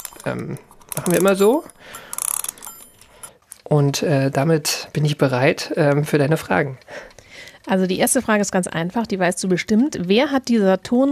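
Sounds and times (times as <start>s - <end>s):
handling noises: 0.0s - 3.6s
mechanical alarm clock being wound up: 0.0s - 3.7s
speech: 0.2s - 2.1s, 3.7s - 11.1s.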